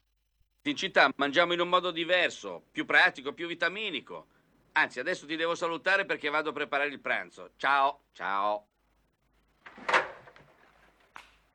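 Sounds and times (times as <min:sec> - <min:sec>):
speech: 0:00.6 - 0:08.7
wooden folding table swung open with clattering thump and locking knock: 0:09.6 - 0:11.2.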